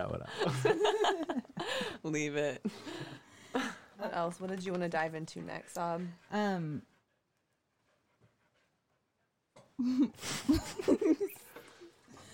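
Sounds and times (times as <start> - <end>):
speech: 0.0 - 1.4, 2.0 - 3.0, 3.6 - 6.9, 9.8 - 11.4
laughter: 0.2 - 2.0
dog panting: 2.8 - 12.3.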